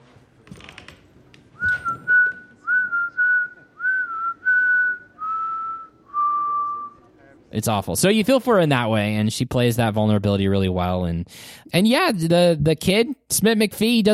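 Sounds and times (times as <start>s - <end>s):
person whistling a short slow melody: 1.6s - 6.9s
speech: 7.6s - 14.1s.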